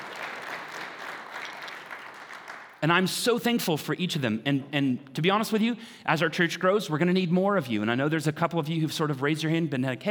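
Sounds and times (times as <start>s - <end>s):
church congregation clapping: 0.0s - 2.9s
speech: 2.8s - 10.0s.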